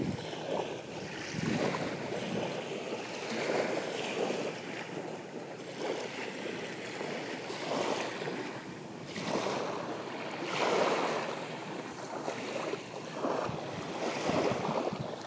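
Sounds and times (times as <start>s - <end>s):
waves washing against a shoreline: 0.0s - 15.2s.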